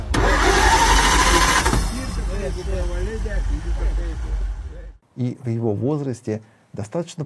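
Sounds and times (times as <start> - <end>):
starter of a 1929 Reo vintage car cranking its engine at a vintage car rally: 0.1 - 2.6
rough burst of 1929 Reo vintage car engine noise: 0.1 - 4.8
speech: 5.2 - 7.2.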